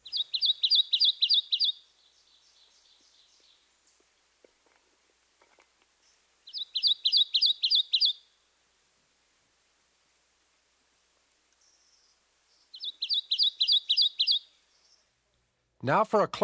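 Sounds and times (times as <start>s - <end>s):
Kentucky warbler singing bouncy whistled phrases: 0.0s - 4.1s, 6.0s - 8.4s, 11.6s - 15.1s
speech: 15.8s - 16.4s.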